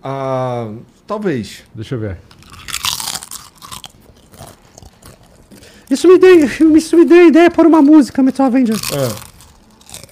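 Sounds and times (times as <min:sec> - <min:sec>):
speech: 0:00.0 - 0:02.4, 0:05.9 - 0:09.3
crisp potato chips being chewed: 0:02.3 - 0:10.1.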